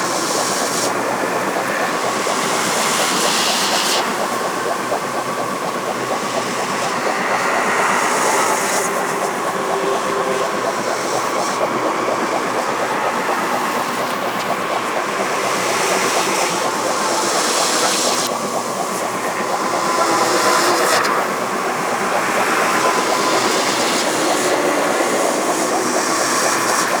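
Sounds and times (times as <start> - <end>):
loop: 0.0 - 26.9.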